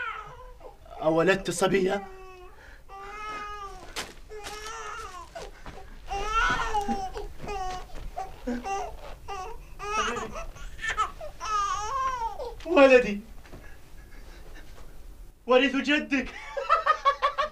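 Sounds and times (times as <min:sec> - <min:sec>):
baby crying with high-pitched wails: 0:00.0 - 0:01.2, 0:01.8 - 0:12.7
speech: 0:01.0 - 0:02.2, 0:12.7 - 0:13.3, 0:15.5 - 0:16.4
laughter: 0:16.3 - 0:17.5.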